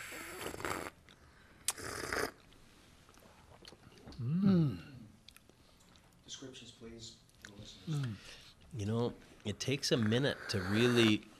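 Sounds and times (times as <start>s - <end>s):
slurping sips of tea: 0.0s - 0.9s, 1.7s - 2.4s
speech: 6.4s - 11.3s.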